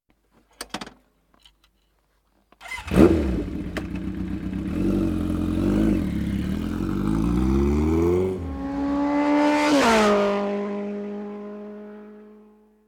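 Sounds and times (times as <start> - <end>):
motorcycle: 2.6 - 12.8.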